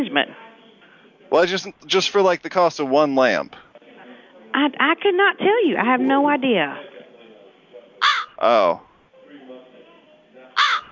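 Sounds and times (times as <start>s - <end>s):
speech: 0.0s - 0.4s, 1.3s - 3.6s, 4.6s - 6.9s, 8.4s - 8.8s
faint voices murmuring: 0.0s - 2.8s, 3.6s - 10.9s
crow cawing: 8.0s - 8.4s, 10.6s - 10.9s.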